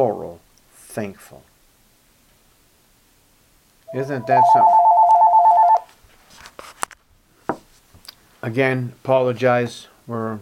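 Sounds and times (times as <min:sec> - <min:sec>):
speech: 0:00.0 - 0:00.4, 0:01.0 - 0:01.5, 0:03.9 - 0:04.8, 0:08.4 - 0:10.4
electronic telephone two-pitch beep in a home: 0:03.9 - 0:05.8.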